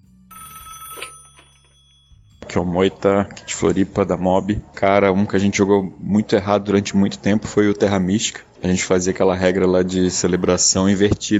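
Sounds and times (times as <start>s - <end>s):
telephone ringing for an incoming call: 0.0s - 3.0s
speech: 2.6s - 11.3s.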